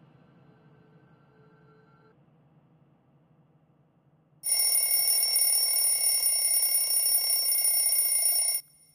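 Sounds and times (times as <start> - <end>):
alarm clock ringing: 4.5 - 8.8.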